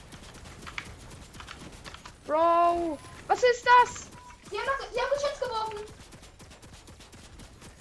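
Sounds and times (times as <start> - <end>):
rapid automatic gunfire from a video game turret: 0.0 - 7.8
speech: 2.3 - 6.0.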